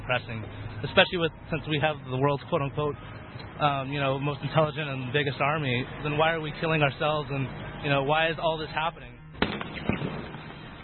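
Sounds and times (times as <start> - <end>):
speech: 0.1 - 9.2
gunshot during a crowd confrontation with police: 9.4 - 10.7.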